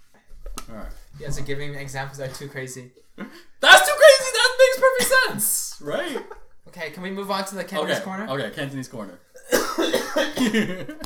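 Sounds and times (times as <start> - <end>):
speech: 0.7 - 3.8, 5.0 - 11.0
harsh coughing: 9.4 - 10.9.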